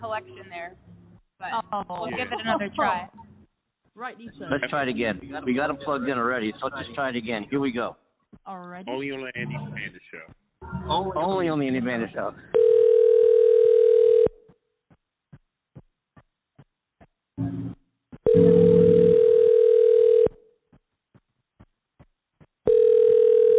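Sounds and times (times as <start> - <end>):
speech: 0.0 - 3.2, 4.0 - 12.6
laughter: 1.5 - 3.4, 4.3 - 7.8
phone ringback tone on a call to a U.S. phone number: 12.5 - 14.4, 18.3 - 20.4, 22.7 - 23.5.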